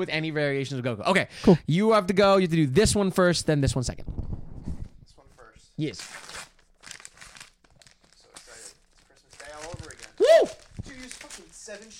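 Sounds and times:
speech: 0.0s - 4.2s, 5.8s - 6.3s
gift wrapping paper ripping and crinkling: 5.9s - 11.9s
excited exclamation: 10.1s - 11.1s.

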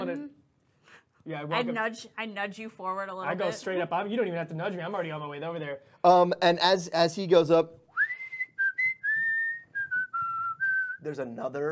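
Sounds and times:
speech: 0.0s - 0.4s, 1.2s - 7.8s, 11.0s - 11.6s
song whistled as a clear high melody: 7.9s - 11.2s.

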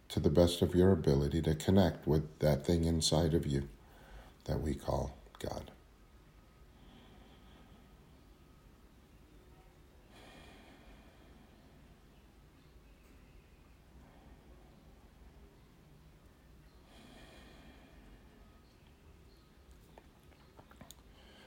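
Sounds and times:
low hum: 0.0s - 21.4s
speech: 0.1s - 3.8s, 4.4s - 5.8s
slow airy breathing in and out: 3.7s - 4.5s, 5.9s - 21.4s.

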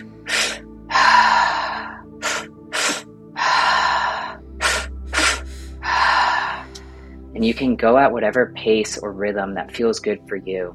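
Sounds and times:
quick sharp breathwork inhales through the mouth into the belly and chest: 0.0s - 7.3s
speech: 7.4s - 10.7s.

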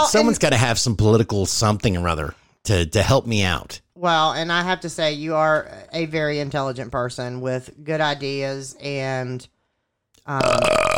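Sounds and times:
speech: 0.0s - 9.5s, 10.3s - 10.8s
loud croaking belch: 10.3s - 10.9s.

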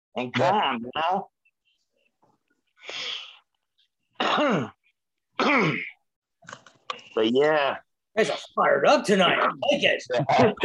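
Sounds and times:
speech: 0.2s - 1.4s, 4.2s - 4.8s, 5.4s - 5.9s, 7.2s - 10.6s
coughing and throat clearing caused by smoke: 4.1s - 6.0s.

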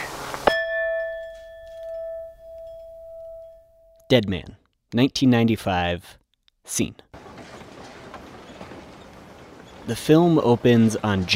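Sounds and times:
speech: 4.1s - 7.1s, 9.9s - 11.3s
passenger train clattering along the tracks: 7.2s - 11.3s.

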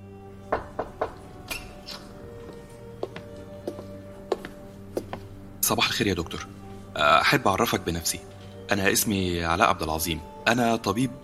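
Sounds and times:
knocking on a door: 0.5s - 1.2s
speech: 5.7s - 11.2s.

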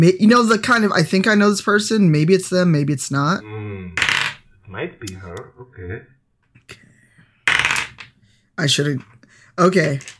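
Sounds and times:
speech: 0.0s - 4.1s, 4.7s - 6.9s, 8.6s - 10.1s
dice clattering across a hard surface: 4.0s - 4.4s, 7.5s - 8.1s, 9.7s - 10.1s.

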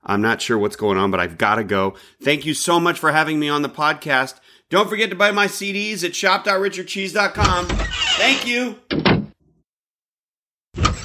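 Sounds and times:
speech: 0.1s - 9.1s
large heavy wooden door creaking: 7.4s - 9.4s.

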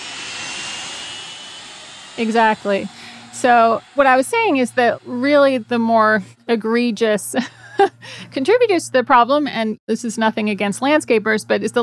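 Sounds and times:
jet plane taking off: 0.0s - 6.3s
speech: 2.2s - 11.8s.

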